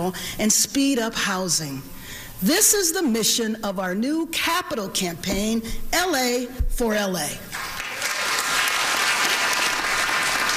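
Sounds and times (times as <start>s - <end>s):
speech: 0.0s - 7.6s
audience applause: 7.6s - 10.5s.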